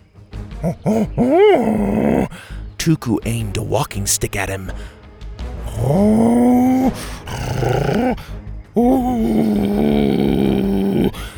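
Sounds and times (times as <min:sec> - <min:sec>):
laughter: 0:00.6 - 0:02.3
person voicing a low menacing growl: 0:00.6 - 0:02.5, 0:05.6 - 0:11.3
speech: 0:00.6 - 0:05.0, 0:05.8 - 0:10.6.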